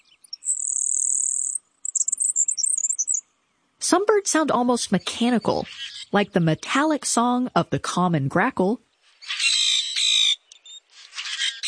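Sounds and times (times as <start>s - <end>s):
grasshopper sparrow buzzy song: 0.0s - 3.7s, 4.8s - 7.0s, 8.8s - 11.6s
speech: 3.9s - 8.9s.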